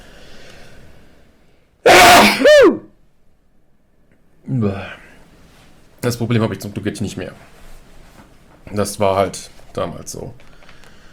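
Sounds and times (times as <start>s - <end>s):
quiet breathing: 0.0s - 1.7s, 10.4s - 11.1s
loud sneeze: 1.9s - 2.9s
speech: 4.6s - 4.9s, 6.1s - 7.6s, 8.7s - 10.5s.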